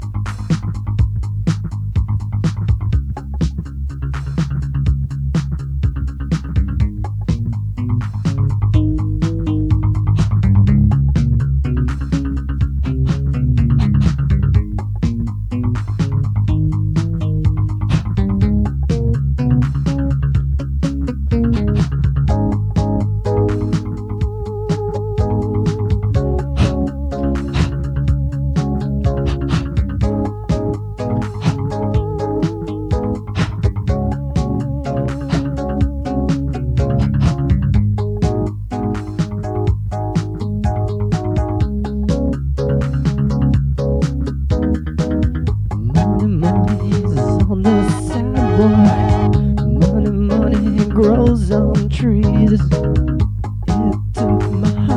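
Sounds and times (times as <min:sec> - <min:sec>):
piano rhythm on tape: 0:00.0 - 0:54.9.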